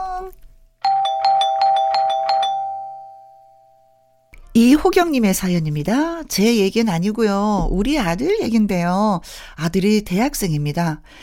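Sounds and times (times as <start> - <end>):
electronic doorbell ding-dong chime: 0.8 - 4.3
speech: 4.6 - 11.2.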